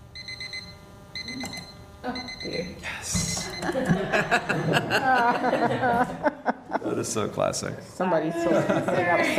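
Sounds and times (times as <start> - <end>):
electronic alarm beeping inside a bag: 0.0 - 4.0
speech: 1.3 - 9.3
laughter: 3.4 - 7.2, 8.3 - 9.3.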